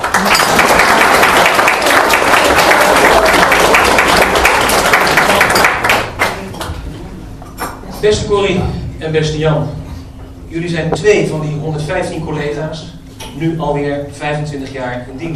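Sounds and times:
audience applause for a toast: 0:00.0 - 0:06.5
speech: 0:08.0 - 0:09.8, 0:10.5 - 0:15.3.

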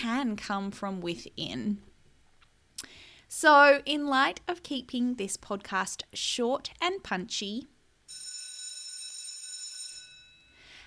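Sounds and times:
speech: 0:00.0 - 0:01.9, 0:03.3 - 0:07.7
faint room noise: 0:00.0 - 0:10.8
electric school bell ringing for morning tea: 0:08.1 - 0:10.8.

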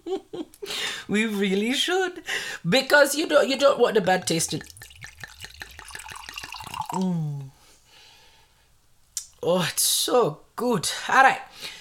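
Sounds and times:
speech: 0:01.1 - 0:04.8, 0:07.0 - 0:07.2, 0:09.5 - 0:11.7
wine glugging out of a bottle for tasting: 0:04.0 - 0:07.6
brief loud low hum from a voice: 0:06.9 - 0:07.5.

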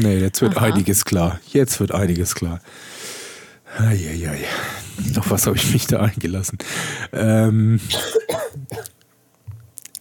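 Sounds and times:
speech: 0:00.0 - 0:03.1, 0:03.7 - 0:09.0
harsh raspy coughs: 0:07.9 - 0:08.9.

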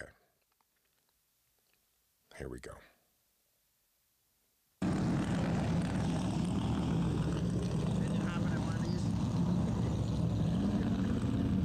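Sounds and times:
speech: 0:02.4 - 0:03.0
race car engines roaring as cars pull out from pit row onto the track: 0:04.8 - 0:11.6.

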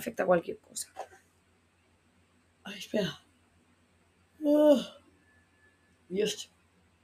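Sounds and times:
speech: 0:00.0 - 0:01.2, 0:02.7 - 0:03.2, 0:04.4 - 0:05.0, 0:06.1 - 0:06.5
person yawning: 0:04.4 - 0:05.0.

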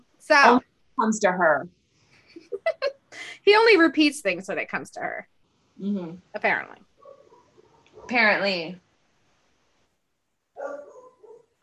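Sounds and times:
speech: 0:00.2 - 0:01.8, 0:02.6 - 0:06.9, 0:08.0 - 0:08.8
dog barking: 0:07.0 - 0:08.2, 0:10.6 - 0:11.6.

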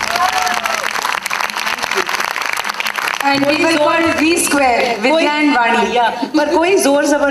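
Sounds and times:
audience applause: 0:00.0 - 0:05.0
crowd voices and cheers: 0:00.0 - 0:05.2
speech: 0:03.3 - 0:07.2.

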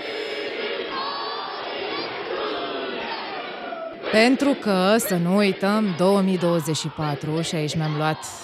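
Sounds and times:
group chanting a Maori haka war cry in the New Zealand parliament: 0:00.0 - 0:08.4
speech: 0:04.1 - 0:08.4.

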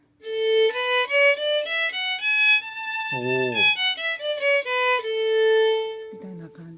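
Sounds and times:
violin bowing an ascending and descending scale: 0:00.0 - 0:06.6
short vocal exclamation: 0:03.1 - 0:03.7.

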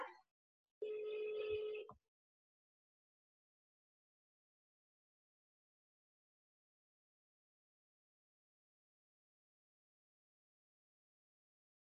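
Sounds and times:
telephone ringback tone on an outgoing call: 0:00.8 - 0:01.9.

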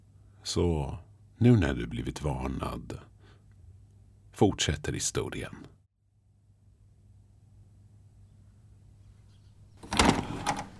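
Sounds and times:
speech: 0:00.4 - 0:03.1, 0:04.4 - 0:05.8
door bursting open with a rattling clatter: 0:09.8 - 0:10.7.

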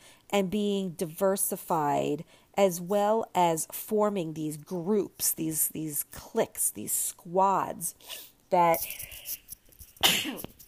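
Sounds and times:
speech: 0:00.3 - 0:09.4, 0:10.0 - 0:10.5
human sneeze: 0:10.0 - 0:10.6.

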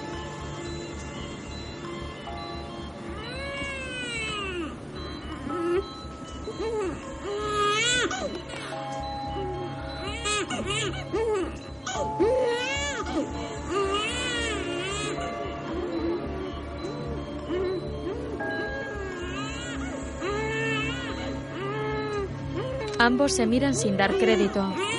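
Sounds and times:
low hum: 0:00.0 - 0:24.9
babies crying in an incubator: 0:03.1 - 0:05.9, 0:06.5 - 0:08.8, 0:09.9 - 0:23.0, 0:24.0 - 0:24.9
speech: 0:23.1 - 0:24.9.

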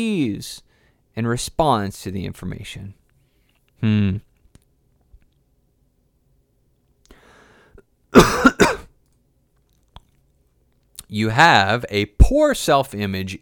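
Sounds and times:
speech: 0:00.0 - 0:03.0, 0:03.8 - 0:04.3, 0:11.1 - 0:13.4
harsh coughs: 0:08.2 - 0:08.9
voiced throat clearing: 0:08.2 - 0:08.9.

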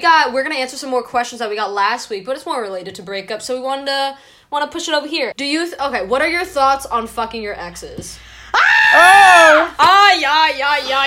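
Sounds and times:
speech: 0:00.0 - 0:11.0
people screaming: 0:08.5 - 0:09.8.

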